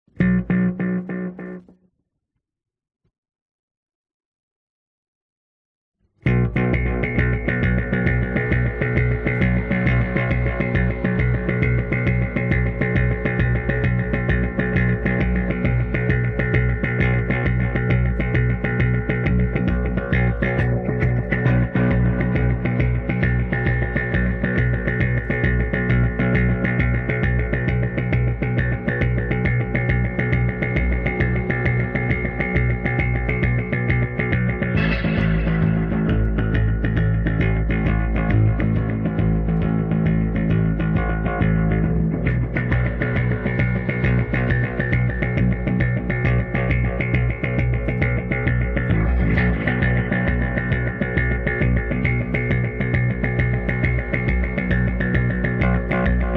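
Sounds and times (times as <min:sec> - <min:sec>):
bass guitar playing: 0:00.1 - 0:01.8, 0:06.2 - 0:56.3.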